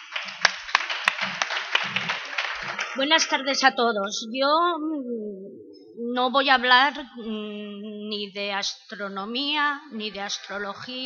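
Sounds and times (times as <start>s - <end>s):
audience applause before a talk: 0.0s - 3.4s
low murmuring voices: 0.0s - 11.0s
speech: 3.0s - 5.4s, 6.1s - 11.0s.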